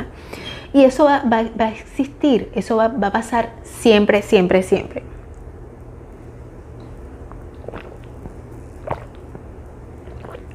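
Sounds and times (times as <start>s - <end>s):
steady low hiss: 0.0s - 10.5s
speech: 0.7s - 5.2s
person swallowing water in wet gulps: 6.8s - 10.5s.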